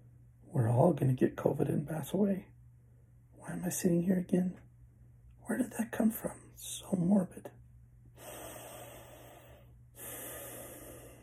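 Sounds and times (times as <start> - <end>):
speech: 0.8 - 2.6, 3.5 - 4.6, 5.5 - 7.6
slow deep breathing during a meditation session: 8.1 - 11.2.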